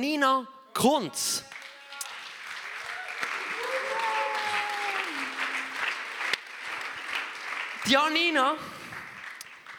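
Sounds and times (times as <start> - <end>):
speech: 0.0 - 1.5, 7.8 - 8.8
audience applause: 1.5 - 9.7
cheers and whoops: 2.8 - 5.8.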